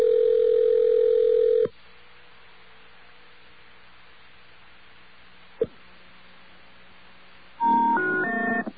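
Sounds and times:
steady telephone tone: 0.0 - 1.7, 7.6 - 8.7
loud three-tone telephone error intercept signal in short stepped beeps: 7.6 - 8.7.

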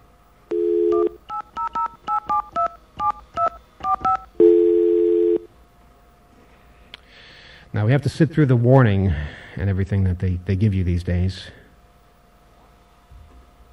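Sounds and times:
touch-tone dialing of a telephone number: 0.5 - 4.3
sustained telephone tone: 0.5 - 5.5
speech: 7.9 - 11.6.

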